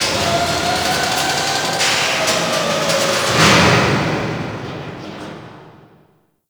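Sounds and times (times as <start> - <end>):
ocean conveyor ambience: 0.0 - 5.8.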